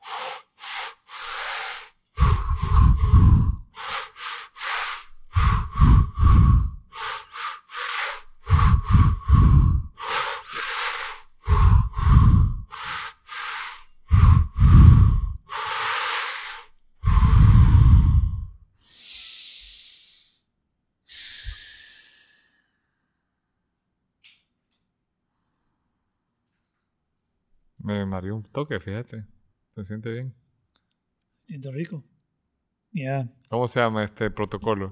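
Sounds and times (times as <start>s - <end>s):
deep inhalations and sighing exhalations during a breathing exercise: 0.0s - 20.5s, 21.1s - 23.2s
speech: 28.2s - 30.4s, 31.4s - 32.1s, 32.9s - 34.8s.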